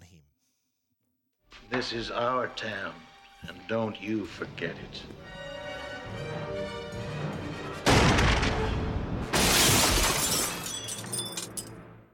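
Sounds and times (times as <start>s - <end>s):
speech: 1.7s - 5.4s
gunfire volley: 7.8s - 10.1s
table crashing and splintering: 9.3s - 10.9s.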